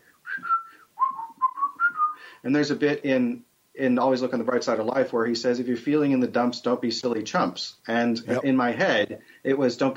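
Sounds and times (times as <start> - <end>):
person whistling a short melodic tune: 0.2 - 2.3
speech: 2.4 - 9.9.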